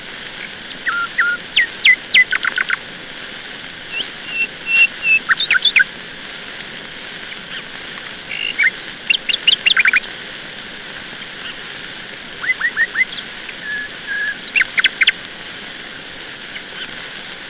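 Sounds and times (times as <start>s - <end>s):
nightingale song with whistled notes, clicks and trills: 0.7s - 2.8s, 3.9s - 5.9s, 8.3s - 10.0s, 11.2s - 15.2s.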